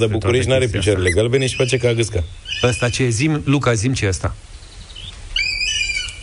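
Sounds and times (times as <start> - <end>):
speech: 0.0 - 4.5
hawk calling: 0.4 - 3.4, 4.6 - 6.2.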